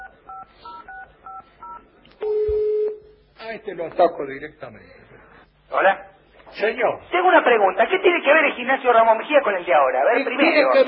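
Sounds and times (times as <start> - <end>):
loud sustained steady telephone tone: 0.0 - 3.1
speech: 3.6 - 10.8.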